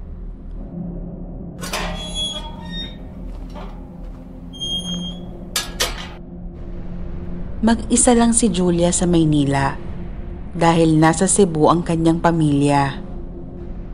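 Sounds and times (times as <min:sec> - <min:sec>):
low steady rumble: 0:00.0 - 0:13.9
gate creaking open: 0:01.6 - 0:06.2
speech: 0:07.6 - 0:09.8, 0:10.6 - 0:13.0.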